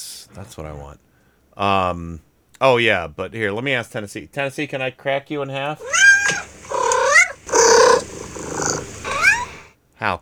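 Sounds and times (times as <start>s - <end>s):
speech: 0.0s - 6.5s, 10.0s - 10.2s
cat purring with chirpy trills: 5.7s - 9.7s.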